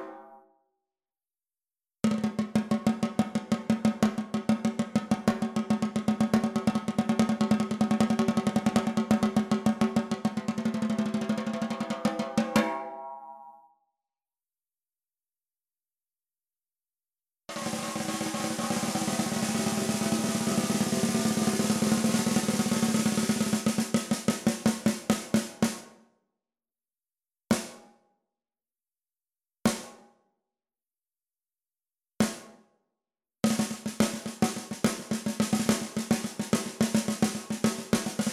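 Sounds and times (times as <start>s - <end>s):
aluminium snare drum: 2.1s - 12.8s, 17.5s - 26.0s, 27.5s - 27.8s, 29.7s - 30.0s, 32.2s - 32.6s, 33.5s - 38.3s.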